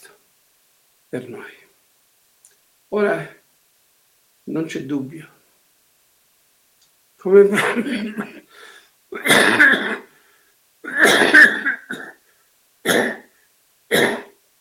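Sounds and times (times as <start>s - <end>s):
speech: 1.1s - 1.6s, 2.9s - 3.4s, 4.5s - 5.4s, 7.2s - 10.0s
man coughing: 7.5s - 8.5s, 9.2s - 10.1s, 10.8s - 12.2s, 12.8s - 13.3s, 13.9s - 14.3s
man clearing his throat: 7.6s - 8.5s, 9.1s - 10.1s, 10.8s - 12.2s, 12.8s - 13.3s, 13.9s - 14.4s.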